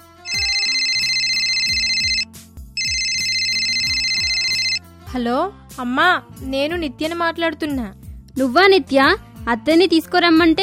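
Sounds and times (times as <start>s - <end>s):
phone ringtone as a call is placed: 0.3s - 4.8s
speech: 5.1s - 10.6s.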